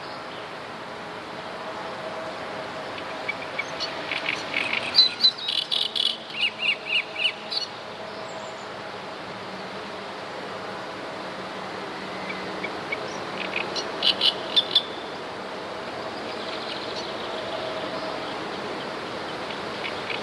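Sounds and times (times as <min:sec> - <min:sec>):
background hiss: 0:00.0 - 0:20.2
great reed warbler harsh grating song: 0:03.0 - 0:08.7, 0:12.1 - 0:15.1, 0:16.0 - 0:20.2.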